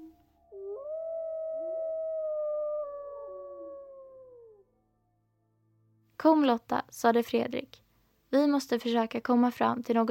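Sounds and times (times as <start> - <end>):
wolves howling in chorus: 0.5 - 4.9
speech: 6.2 - 10.1.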